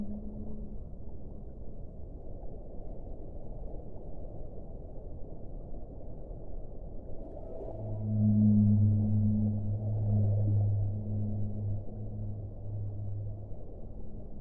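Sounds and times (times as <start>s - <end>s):
whales singing low and deep: 0.0s - 0.8s, 7.2s - 14.4s
faint higher tone: 0.0s - 1.1s, 7.2s - 14.4s
underwater noise: 7.2s - 14.4s.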